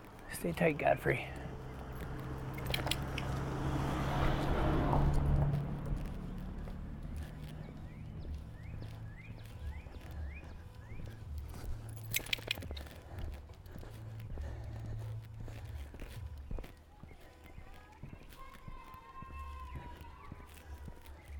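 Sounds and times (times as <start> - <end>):
speech: 0.4 - 1.4
delivery truck rumbling past: 1.0 - 11.4
low hum: 1.3 - 16.4.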